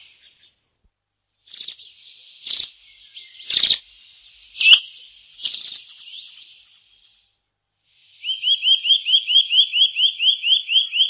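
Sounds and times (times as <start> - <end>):
Eurasian nuthatch calls: 1.5 - 3.9, 4.5 - 7.2, 8.0 - 11.0.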